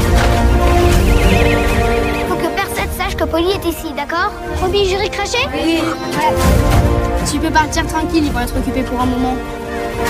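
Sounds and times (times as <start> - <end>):
pony neighing: 0.2 - 2.8, 5.4 - 6.6
speech: 3.7 - 10.0.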